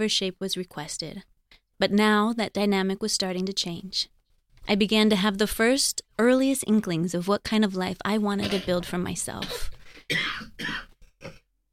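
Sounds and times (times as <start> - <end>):
speech: 0.0 - 11.4
harsh coughs: 8.4 - 8.8, 9.4 - 11.4.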